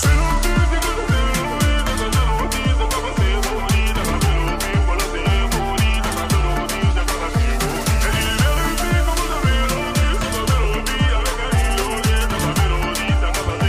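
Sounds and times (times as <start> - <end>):
French rap song on radio: 0.0 - 13.6
heavy repeating bass beat: 0.0 - 13.6.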